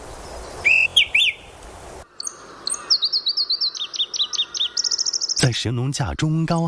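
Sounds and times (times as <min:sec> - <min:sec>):
male bird chirping and calling in a mountain forest: 0:00.4 - 0:01.5, 0:02.2 - 0:05.9
speech: 0:05.4 - 0:06.6.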